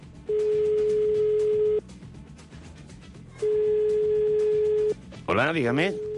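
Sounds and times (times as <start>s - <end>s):
mobile phone ringing tone over a call line: 0.3s - 1.8s, 3.4s - 5.0s, 5.8s - 6.1s
speech: 5.3s - 6.1s.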